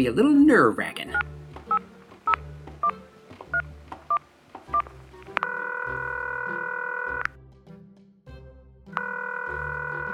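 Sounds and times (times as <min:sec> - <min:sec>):
speech: 0:00.0 - 0:01.3
electronic keypad beeps from a phone being dialed on speakerphone: 0:01.1 - 0:07.3, 0:09.0 - 0:10.1.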